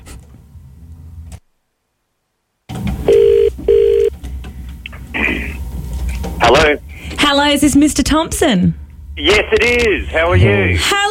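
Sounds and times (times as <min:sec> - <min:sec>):
low hum: 0:00.0 - 0:11.0
telephone ringback tone heard through a phone line on an outgoing call: 0:03.1 - 0:04.1
speech: 0:07.3 - 0:11.0.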